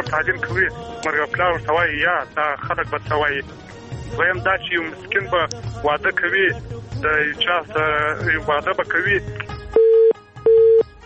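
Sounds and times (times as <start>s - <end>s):
speech: 0.0s - 9.5s
telephone cut-off tone from a call dropped on low battery: 9.8s - 10.9s.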